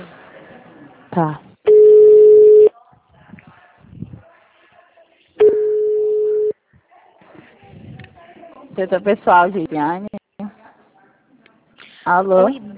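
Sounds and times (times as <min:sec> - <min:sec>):
speech: 0:01.2 - 0:01.4, 0:08.8 - 0:10.1, 0:12.1 - 0:12.7
long telephone beeps while a call is transferred: 0:01.7 - 0:02.7, 0:05.4 - 0:06.5.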